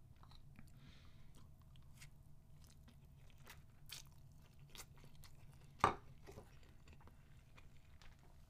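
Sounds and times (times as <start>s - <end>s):
low steady hum: 0.0s - 8.4s
quiet chewing of noodles eaten with chopsticks: 0.1s - 8.4s.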